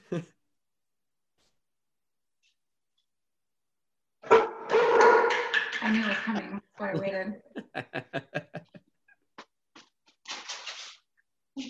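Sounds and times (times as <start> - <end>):
speech: 0.1 - 0.4
puppy barking: 4.2 - 5.3
laughter: 6.8 - 9.1.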